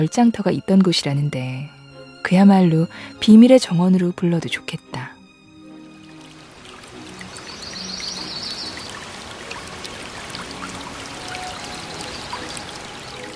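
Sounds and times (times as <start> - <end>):
speech: 0.0 - 5.2
babbling stream in Baeksasil Valley, a forested valley in Seoul, South Korea: 5.7 - 13.3
faint bird call: 10.5 - 13.3.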